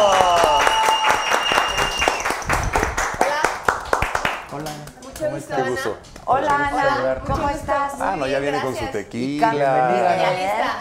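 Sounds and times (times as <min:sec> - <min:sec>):
whistles and cheers: 0:00.0 - 0:02.7
audience applause: 0:00.0 - 0:04.4
speech: 0:05.8 - 0:10.7.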